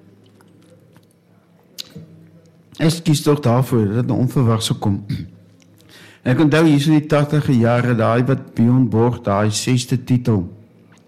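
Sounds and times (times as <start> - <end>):
low hum: 0.0 - 11.0
speech: 2.8 - 5.4, 6.2 - 10.6
sipping and swallowing water to soothe a dry throat: 10.8 - 11.0.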